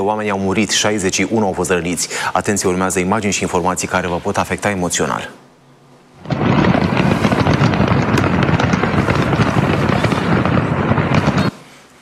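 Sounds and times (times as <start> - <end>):
speech: 0.0 - 5.4
fireworks crackling and popping from an exploding fireworks factory in southern China: 6.2 - 11.9.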